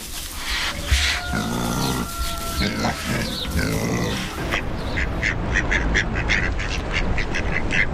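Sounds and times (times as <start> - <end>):
ducks quacking in a barnyard: 0.4 - 7.9
livestock grunting: 0.5 - 4.6.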